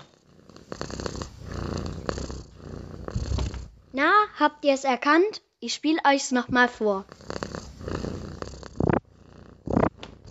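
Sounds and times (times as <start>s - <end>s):
cat purring: 0.0s - 4.4s, 6.9s - 10.3s
speech: 4.0s - 7.3s.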